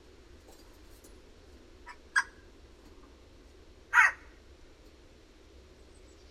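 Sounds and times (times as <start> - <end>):
Eurasian jay Garrulus glandarius screeching: 1.9 - 2.4, 3.9 - 4.3.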